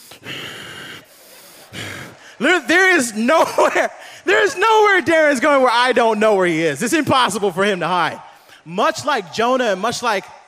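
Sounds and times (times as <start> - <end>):
voice imitating the labored breathing of a child with a breathing problem: 0.0 - 2.4
laughter: 1.0 - 4.6
speech: 2.4 - 10.4.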